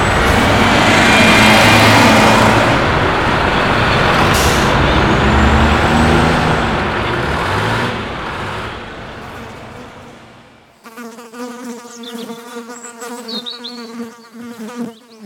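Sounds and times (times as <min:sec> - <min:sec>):
bus air brakes releasing hissing air: 0:00.0 - 0:10.6
large bus rumbling: 0:00.0 - 0:10.7.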